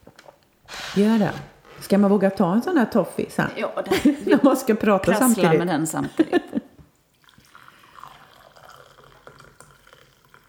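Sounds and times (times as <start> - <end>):
speech: 1.0 - 6.6
laughter: 3.8 - 6.8
coffee pouring into a cup: 7.1 - 10.4.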